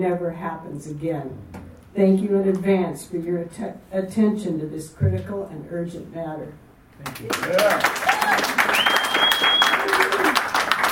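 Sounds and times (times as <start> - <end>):
speech: 0.0 - 8.5
audience clapping: 7.0 - 10.8
thin whistle-like tone: 8.8 - 9.8.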